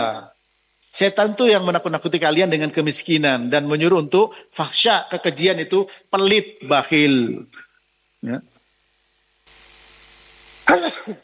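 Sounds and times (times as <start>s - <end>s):
low steady hum: 0.0s - 11.2s
speech: 1.0s - 7.6s, 8.2s - 8.5s, 10.7s - 11.2s
person sneezing: 10.7s - 11.2s.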